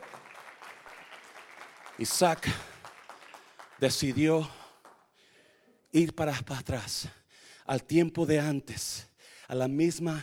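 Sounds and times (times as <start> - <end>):
audience applauding: 0.0 - 5.1
speech: 2.0 - 2.7, 3.8 - 4.6, 5.9 - 10.2.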